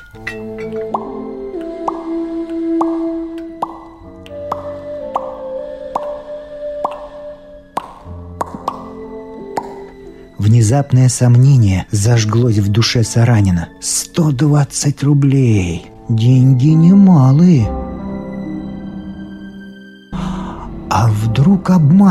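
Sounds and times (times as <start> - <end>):
liquid dripping from a small glass vial: 0.0 - 6.2
speech: 0.1 - 0.9, 10.7 - 17.8, 21.6 - 22.0.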